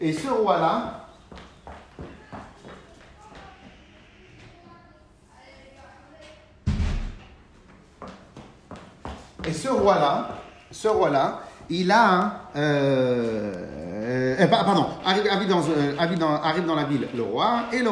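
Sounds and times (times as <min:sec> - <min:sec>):
speech: 0:00.0 - 0:01.4, 0:09.6 - 0:17.9
footsteps crossing a room: 0:00.0 - 0:04.9, 0:05.9 - 0:17.9.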